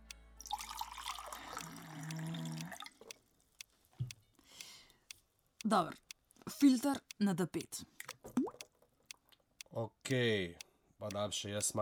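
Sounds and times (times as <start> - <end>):
quiet water drips: 0.0 - 10.2
water pouring with a soft splashing hiss: 0.4 - 3.1
speech: 5.7 - 6.0, 6.6 - 8.0, 9.8 - 11.8.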